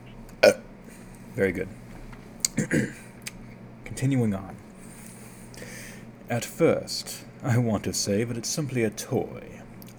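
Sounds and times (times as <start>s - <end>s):
single short loud burp: 0.4s - 0.7s, 2.5s - 3.0s
speech: 1.4s - 1.8s, 2.6s - 3.1s, 4.0s - 4.6s, 6.3s - 9.9s.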